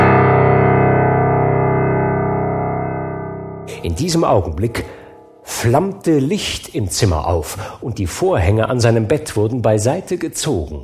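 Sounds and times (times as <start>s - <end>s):
deep hollow clock bell striking the hour: 0.7s - 6.1s
speech: 3.8s - 10.8s.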